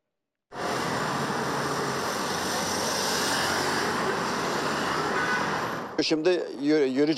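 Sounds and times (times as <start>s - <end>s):
road traffic roar on a busy street: 0.5s - 6.1s
speech: 6.0s - 7.1s.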